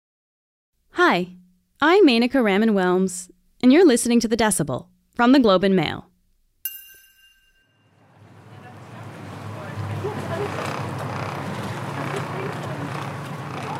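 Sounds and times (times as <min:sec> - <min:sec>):
speech: 0:01.0 - 0:06.1
motorboat engine drone on its way to harvest kelp: 0:08.1 - 0:13.7
rushing water: 0:08.5 - 0:13.7.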